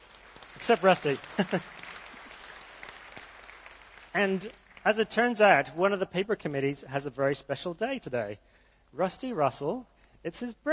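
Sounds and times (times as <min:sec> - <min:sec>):
audience applause at a conference: 0:00.0 - 0:05.2
speech: 0:00.6 - 0:01.8, 0:04.2 - 0:10.7.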